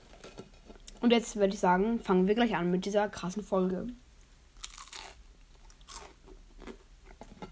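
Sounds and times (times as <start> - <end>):
speech: 1.0 - 4.0
person chewing crunchy muesli: 4.6 - 6.9.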